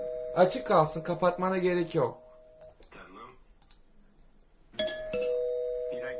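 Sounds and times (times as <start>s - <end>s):
speech: 0.4s - 2.2s
doorbell ringing with a bright two-tone chime: 4.8s - 6.1s.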